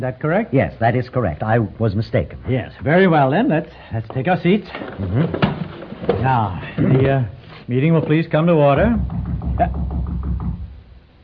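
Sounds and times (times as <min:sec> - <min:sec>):
speech: 0:00.0 - 0:10.0
knocking on a door: 0:08.8 - 0:10.8.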